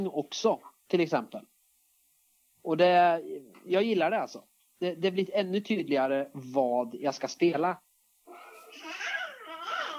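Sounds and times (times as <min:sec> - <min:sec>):
speech: 0:00.0 - 0:01.5, 0:02.6 - 0:07.8
small child crying out in a studio: 0:08.3 - 0:09.9.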